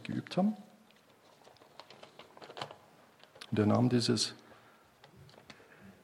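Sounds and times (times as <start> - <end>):
speech: 0.1 - 0.7, 3.5 - 4.4
sheet of paper folded into a paper plane: 0.9 - 3.6.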